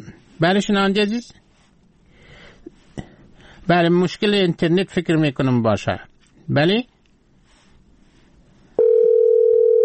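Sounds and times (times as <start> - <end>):
speech: 0.4 - 1.4, 3.7 - 6.9
telephone line ringing tone on an unanswered call: 8.8 - 9.8.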